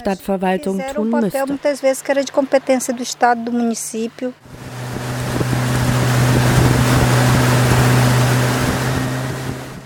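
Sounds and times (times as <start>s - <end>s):
speech: 0.0s - 4.7s
motorboat engine droning on a river: 0.8s - 9.8s
water rushing and splashing along the motorboat hull: 4.5s - 9.8s.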